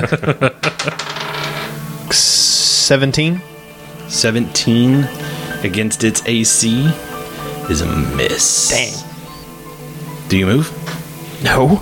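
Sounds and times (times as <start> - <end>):
speech: 0.0 - 1.0, 2.1 - 3.5, 4.1 - 7.1, 7.7 - 9.1, 10.3 - 10.8, 11.4 - 11.8
small hard dice clattering onto a surface after falling off a table: 0.8 - 1.7
steady hiss: 1.7 - 11.8.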